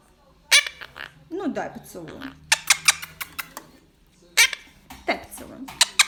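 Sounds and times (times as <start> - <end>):
Monk parakeet Myiopsitta monachus harsh calls: 0.5 - 1.3, 2.0 - 3.6, 4.4 - 4.8, 5.8 - 6.0
speech: 1.4 - 2.4.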